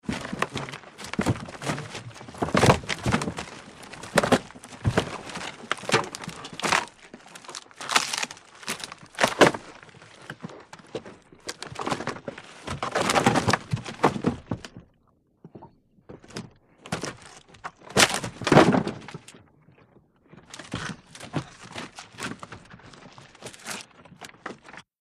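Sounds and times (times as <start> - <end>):
wrench breaking rotten wood: 0.0 - 14.8, 16.3 - 19.4, 20.5 - 24.8.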